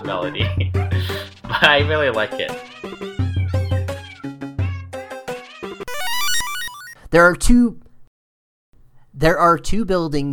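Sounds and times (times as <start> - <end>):
speech: 0.1 - 0.8, 1.6 - 3.2, 7.1 - 7.8, 9.2 - 10.3
laughter: 0.3 - 4.3
synthesized bark-like blips: 5.8 - 7.0
rising buzzy electronic sweep: 5.9 - 6.9.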